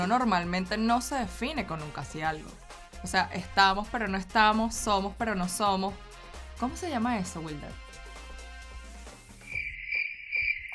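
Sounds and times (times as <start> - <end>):
speech: 0.0 - 7.8
crickets chirping: 9.4 - 10.7.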